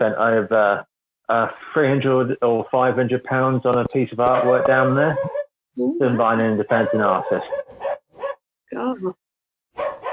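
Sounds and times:
speech: 0.0s - 7.8s, 8.7s - 9.2s
small white dog barking: 4.3s - 5.5s, 6.7s - 8.4s, 9.8s - 10.1s.

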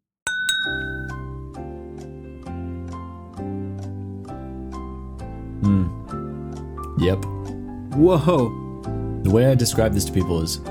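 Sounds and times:
glasses of rum clinking in a toast: 0.3s - 1.2s
resonant chiming chords: 0.3s - 1.2s
speech: 5.6s - 6.0s, 7.0s - 7.3s, 8.0s - 8.6s, 9.2s - 10.6s.

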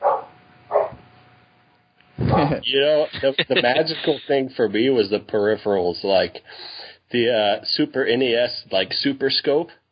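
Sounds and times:
dog barking: 0.0s - 1.0s
laughter: 2.2s - 4.6s
speech: 2.4s - 9.8s.

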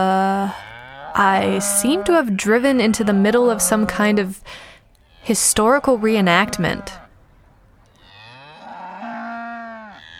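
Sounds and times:
cow mooing among many cows: 0.0s - 4.4s, 5.0s - 7.2s, 7.9s - 10.1s
speech: 0.0s - 7.0s.

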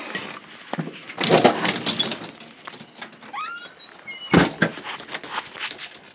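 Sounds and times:
rustling clatter: 0.0s - 3.3s, 3.9s - 6.1s
thin door squeaks: 3.0s - 4.7s.

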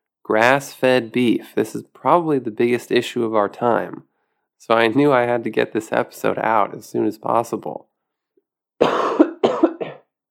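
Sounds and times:
speech: 0.3s - 7.9s
harsh coughs: 8.8s - 10.1s.

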